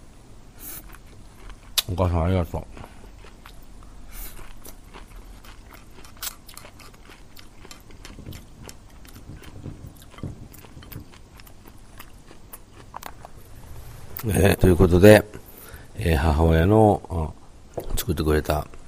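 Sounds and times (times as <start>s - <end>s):
speech: 1.9s - 2.9s, 14.4s - 15.4s, 16.0s - 17.4s, 18.1s - 18.8s
chewing and biting homemade pan-fried yakisoba noodles: 3.0s - 13.3s.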